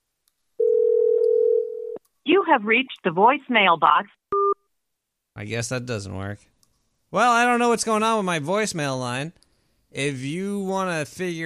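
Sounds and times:
telephone dial tone while calling out: 0:00.6 - 0:02.0
speech: 0:02.4 - 0:04.2, 0:05.4 - 0:06.5, 0:07.1 - 0:11.4.

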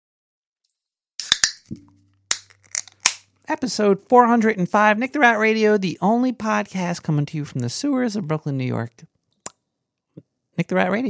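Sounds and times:
can of beer cracked open: 0:01.2 - 0:03.3
speech: 0:03.5 - 0:09.1, 0:10.6 - 0:11.0.

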